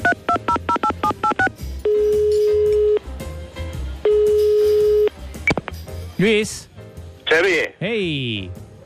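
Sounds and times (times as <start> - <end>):
phone touch-tone dialing beeps: 0.0 - 3.0, 4.0 - 5.6
long phone ringback tones: 0.0 - 3.1, 4.0 - 5.1
speech: 6.2 - 6.7, 7.3 - 8.6.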